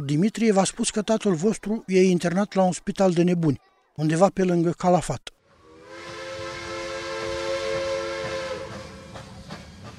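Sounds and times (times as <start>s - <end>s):
speech: 0.0s - 5.4s
long sustained train whistle: 5.5s - 9.7s
train rumbling along the rails: 5.9s - 9.9s.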